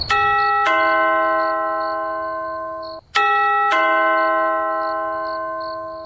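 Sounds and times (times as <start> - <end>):
two-note ding-dong doorbell chime at a door: 0.1 - 6.0.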